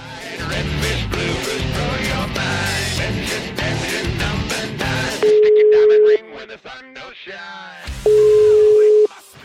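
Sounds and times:
loud music: 0.1s - 5.2s
telephone ringback tone from a call being placed to a family home in Italy: 5.2s - 6.2s, 8.1s - 9.1s.

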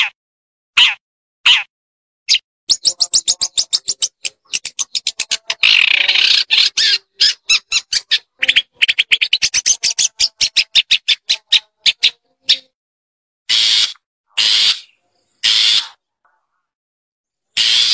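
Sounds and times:
Long-tailed Shrike clipped notes and harsh rasping bursts: 2.3s - 12.8s, 13.5s - 16.5s, 17.6s - 17.9s.

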